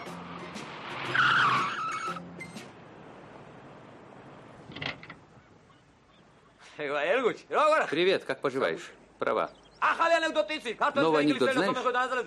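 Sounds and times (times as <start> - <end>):
car tires squealing and skidding while braking to a stop on a city street: 0.0 - 2.8
speech: 6.8 - 12.2.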